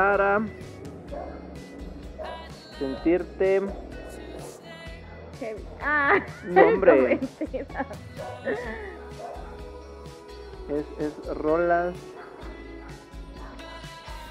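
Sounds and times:
speech: 0.0s - 0.7s, 2.8s - 3.9s, 5.4s - 8.9s, 10.7s - 12.2s
dogs barking and yelping: 1.0s - 7.2s, 7.9s - 9.6s, 11.9s - 14.0s
laughter: 6.0s - 9.0s.

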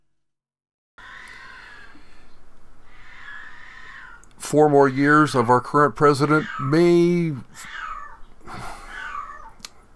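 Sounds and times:
cat meowing behind a door: 2.9s - 5.3s, 6.0s - 9.6s
speech: 4.5s - 7.8s.

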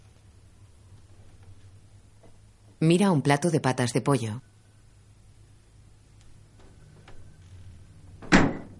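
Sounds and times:
speech: 2.8s - 4.5s
refrigerator door swinging shut: 8.2s - 8.7s.

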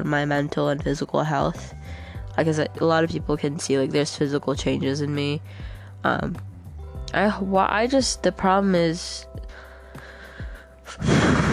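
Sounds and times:
speech: 0.0s - 6.5s, 7.1s - 9.4s, 10.9s - 11.4s
breathing in and out into the microphone: 1.7s - 2.3s, 5.4s - 6.0s, 9.5s - 11.5s.

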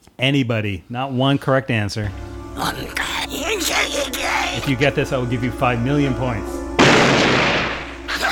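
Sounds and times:
speech: 0.2s - 3.1s, 4.0s - 7.4s
gunshot in a movie clip: 6.8s - 8.2s.

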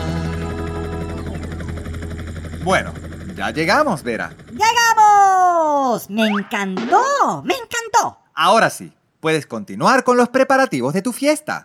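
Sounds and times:
helicopter flying with deep engine hum and rotor chop: 0.0s - 8.1s
speech: 2.6s - 11.6s.

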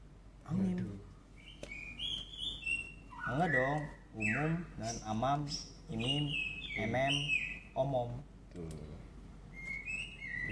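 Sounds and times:
low hum: 0.0s - 10.5s
pet bird whistling call: 1.4s - 7.7s, 9.5s - 10.5s
speech: 3.3s - 9.1s.

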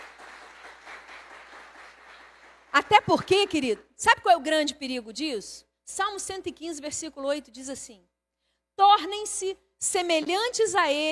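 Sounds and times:
audience applauding: 0.0s - 3.4s
speech: 2.8s - 8.1s, 8.8s - 11.1s.

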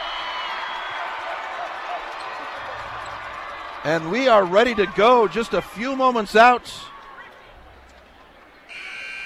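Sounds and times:
large student section crowd roaring: 0.0s - 7.4s
speech: 3.8s - 6.9s
arena buzzer blaring: 8.7s - 9.2s.

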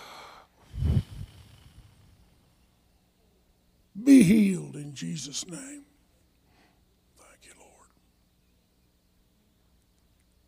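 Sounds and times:
group blowing a deep breath out through their mouths during a prayer for healing: 0.0s - 1.9s
speech: 4.2s - 5.9s.

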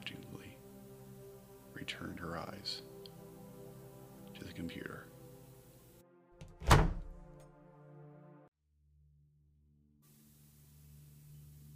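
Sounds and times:
faint hiss: 0.0s - 6.0s, 10.1s - 11.7s
speech: 1.8s - 2.9s, 4.4s - 5.1s
office door closing with a thunk: 6.4s - 7.4s.

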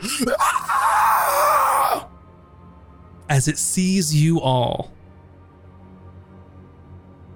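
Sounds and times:
speech: 0.0s - 0.8s, 3.3s - 5.0s
voice imitating the scream of an insect-like monster in a courtyard: 0.0s - 2.1s.

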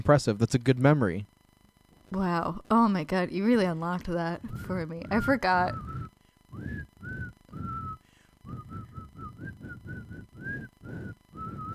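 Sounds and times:
speech: 0.0s - 1.3s, 2.1s - 5.9s
person whistling a simple melody: 4.6s - 11.7s.

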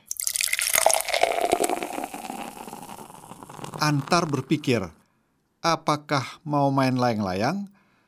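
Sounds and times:
tea pouring into a cup: 0.0s - 4.9s
speech: 3.8s - 5.0s, 5.6s - 7.7s.

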